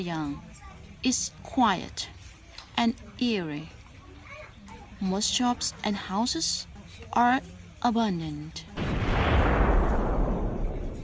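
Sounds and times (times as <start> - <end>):
speech: 0.0 - 2.2, 2.8 - 3.8, 5.0 - 8.8
distant mortar shelling around a border town between Myanmar and China: 8.8 - 11.0.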